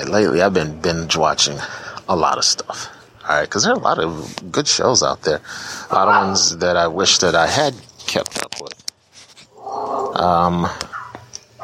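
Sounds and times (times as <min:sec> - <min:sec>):
speech: 0:00.0 - 0:08.8, 0:09.8 - 0:10.9
soft scattered noises: 0:00.0 - 0:11.6
neighbour's dog giving a drawn-out tonal bark: 0:05.9 - 0:06.4, 0:10.9 - 0:11.6.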